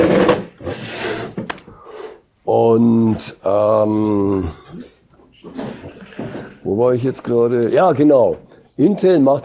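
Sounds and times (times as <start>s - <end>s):
wooden chair scraping and bumping across a hard floor: 0.0s - 1.5s
speech: 2.6s - 5.7s, 6.7s - 9.4s.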